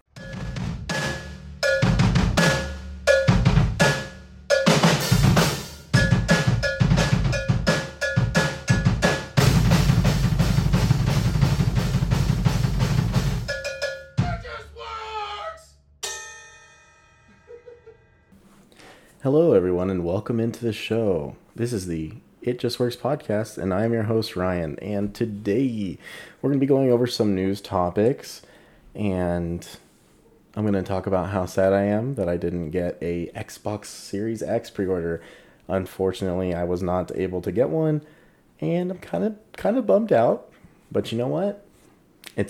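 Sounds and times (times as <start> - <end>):
punchy upbeat intro music with percussive hits and cowbell-like tone: 0.1 - 14.8
speech: 19.3 - 29.8, 30.6 - 41.6.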